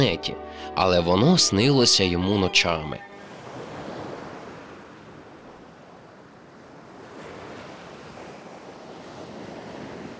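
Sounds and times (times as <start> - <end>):
speech: 0.0 - 3.1
sea waves washing and rustling against the shore: 3.1 - 10.1.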